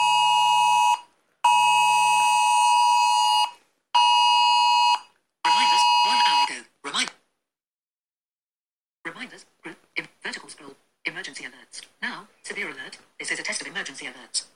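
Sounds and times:
UK government emergency alert tones from a Samsung Galaxy S9 phone: 0.0s - 6.6s
person speaking: 5.5s - 7.2s, 9.1s - 14.5s.

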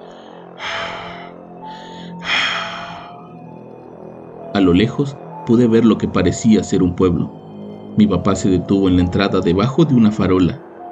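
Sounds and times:
heavy eerie raspy breathing: 0.0s - 3.4s
speech: 4.6s - 7.4s, 8.0s - 10.7s.

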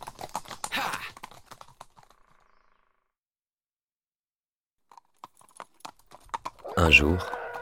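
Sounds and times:
horse hooves clip-clopping: 0.0s - 2.5s, 4.9s - 7.5s
speech: 6.8s - 7.4s.

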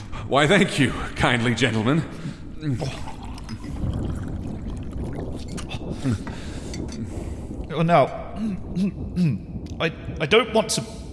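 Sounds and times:
speech: 0.3s - 3.1s, 6.0s - 6.4s, 7.7s - 11.0s
water pouring steadily into a cup: 2.3s - 7.4s.

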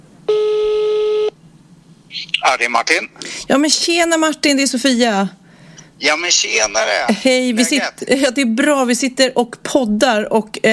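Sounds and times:
ringback tone from an outgoing phone call to a friend: 0.3s - 1.3s
speech: 2.4s - 5.4s, 6.0s - 10.7s.

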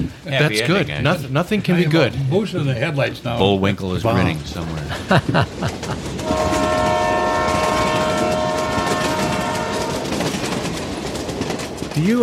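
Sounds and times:
speech: 0.0s - 6.0s, 12.0s - 12.2s
rumble and clatter of a passing train: 0.0s - 12.2s
laughter: 4.2s - 6.4s
train whistle blast: 6.2s - 10.6s.

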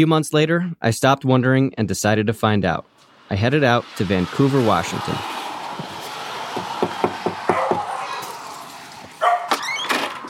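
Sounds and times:
speech: 0.0s - 5.4s
noisy outdoor background: 2.4s - 10.2s
dog barking: 7.5s - 8.4s, 9.2s - 9.6s.

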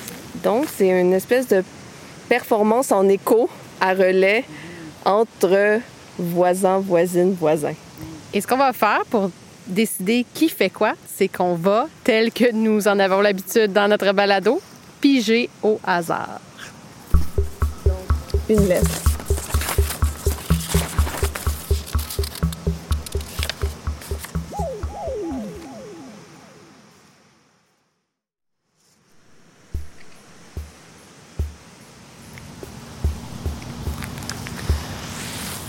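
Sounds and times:
speech: 0.4s - 16.5s, 18.5s - 19.1s
feet stomping on wet seaweed-covered ground: 17.1s - 24.5s, 31.4s - 31.6s, 33.0s - 34.9s.

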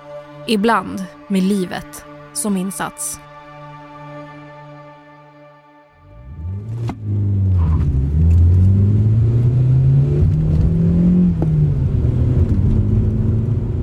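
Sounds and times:
speech: 0.5s - 3.3s
car engine revving under hard acceleration: 6.1s - 13.8s.

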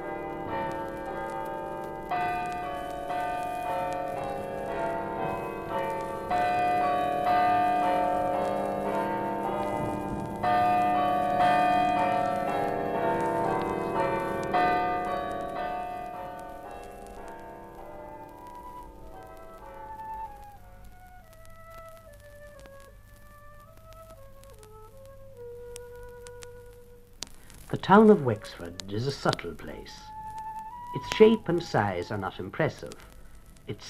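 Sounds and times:
church bells of a church in Wexford chiming: 0.0s - 19.0s
speech: 27.8s - 30.1s, 31.0s - 33.1s, 33.7s - 33.8s.

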